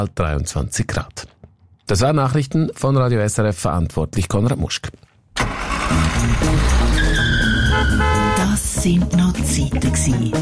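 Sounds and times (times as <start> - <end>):
speech: 0.0 - 5.0, 5.9 - 7.0, 7.8 - 10.4
car engine roaring: 5.4 - 8.5
car tires squealing: 5.4 - 8.5.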